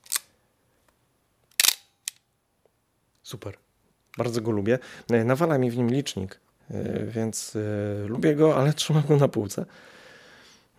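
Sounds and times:
film SLR camera advance lever ratcheting wind: 0:01.5 - 0:02.2
film SLR camera shutter clacking: 0:01.5 - 0:02.2
speech: 0:03.3 - 0:10.0.

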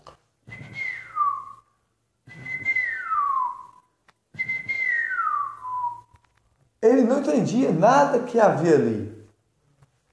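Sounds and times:
person whistling imitating birdsong: 0:00.4 - 0:06.2
speech: 0:06.9 - 0:09.2.

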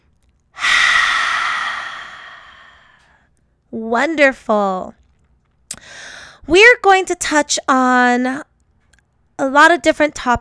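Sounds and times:
deep breath exhaled through an open mouth during a yoga session: 0:00.6 - 0:03.2
speech: 0:03.7 - 0:05.0, 0:06.5 - 0:08.5, 0:09.4 - 0:10.3.

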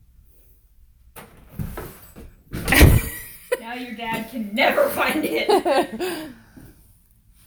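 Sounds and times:
closet door sliding open: 0:01.2 - 0:03.2
closet door bumping shut: 0:02.6 - 0:03.2
speech: 0:03.7 - 0:06.4.

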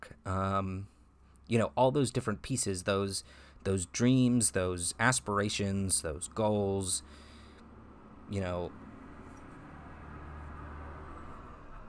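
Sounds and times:
speech: 0:00.2 - 0:00.9, 0:01.5 - 0:07.2, 0:08.3 - 0:08.8
truck driving by outside: 0:06.2 - 0:11.8.

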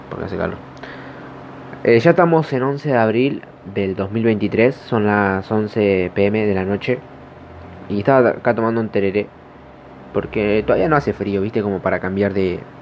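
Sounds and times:
low electric fan hum: 0:00.0 - 0:12.7
speech: 0:00.1 - 0:01.0, 0:01.7 - 0:07.1, 0:07.9 - 0:09.4, 0:10.1 - 0:12.7.

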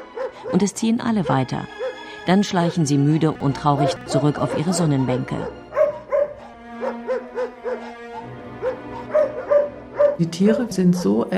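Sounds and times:
dogs barking in short high yips: 0:00.0 - 0:11.3
speech: 0:00.4 - 0:05.6, 0:10.2 - 0:11.3.

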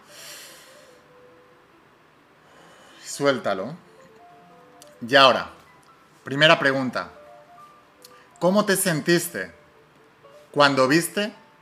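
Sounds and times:
deep airy breath drawn in: 0:00.0 - 0:01.1, 0:02.4 - 0:03.0
speech: 0:03.2 - 0:03.9, 0:05.0 - 0:05.6, 0:06.3 - 0:07.2, 0:08.4 - 0:09.6, 0:10.5 - 0:11.4.

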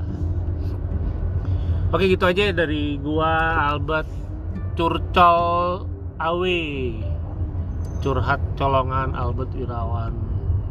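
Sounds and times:
idling and slow-moving cars in jammed toll-road traffic: 0:00.0 - 0:10.6
speech: 0:01.9 - 0:04.2, 0:04.8 - 0:07.1, 0:08.0 - 0:10.2.

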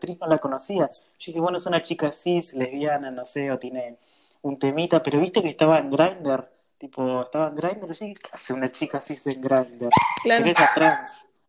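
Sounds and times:
speech: 0:00.0 - 0:11.3
agitated dog barking: 0:09.9 - 0:11.2.

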